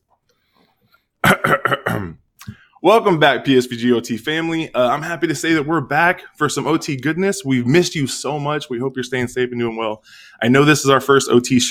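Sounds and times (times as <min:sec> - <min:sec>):
person giving a loud deliberate cough: 0:01.2 - 0:02.6
speech: 0:02.8 - 0:11.6.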